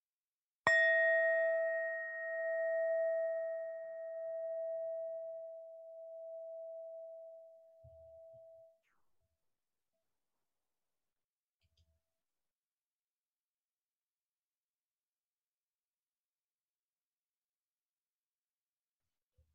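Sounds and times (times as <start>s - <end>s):
meditation bell struck to begin a meditation practice: 0.7s - 8.6s.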